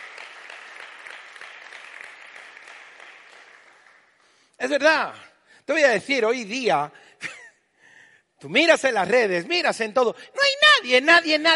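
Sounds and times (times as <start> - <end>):
audience applauding: 0.0 - 4.4
speech: 4.6 - 7.4, 8.4 - 11.5.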